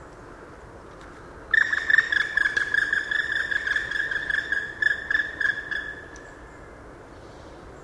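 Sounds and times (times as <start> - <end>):
Black woodpecker giving a fast run of ringing notes in a park garden: 1.5 - 6.5.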